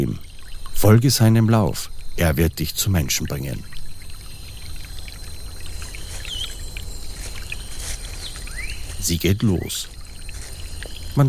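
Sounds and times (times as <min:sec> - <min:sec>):
speech: 0:00.0 - 0:00.2, 0:00.8 - 0:03.9, 0:09.1 - 0:10.0
small jungle stream trickling and gurgling under leaves: 0:00.0 - 0:11.2
faint jungle bird calls: 0:03.2 - 0:11.2
insect-like whistles chirping in the jungle: 0:08.4 - 0:08.8.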